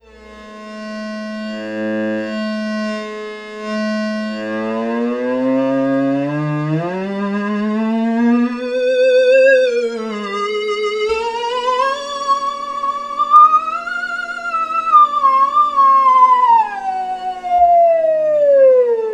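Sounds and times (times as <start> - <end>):
cello octave: 0.0 - 19.1.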